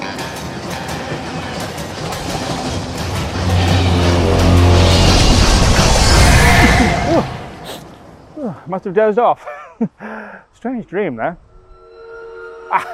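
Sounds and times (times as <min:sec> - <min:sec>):
rhythmic clacking of train on rails: 0:00.0 - 0:06.3
train rumbling past on the rails: 0:00.0 - 0:08.4
sustained horn-like tone: 0:03.3 - 0:07.5, 0:11.5 - 0:12.9
speech: 0:08.6 - 0:11.5, 0:12.7 - 0:12.9.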